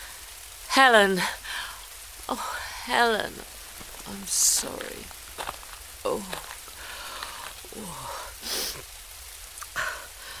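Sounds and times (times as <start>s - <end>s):
steady rain on hard surfaces outside a nightclub: 0.0s - 10.3s
speech: 0.8s - 1.4s, 2.3s - 6.5s, 7.7s - 8.6s.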